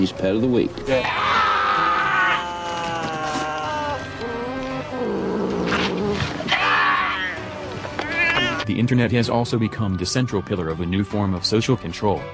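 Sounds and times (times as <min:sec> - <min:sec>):
speech: 0:00.0 - 0:01.4, 0:08.7 - 0:12.3
cat meowing loudly in a video: 0:00.9 - 0:08.7.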